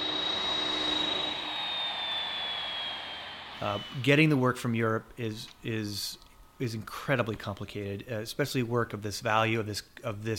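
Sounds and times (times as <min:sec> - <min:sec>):
jet airplane taxiing on an airport ramp: 0:00.0 - 0:04.4
speech: 0:03.6 - 0:10.3.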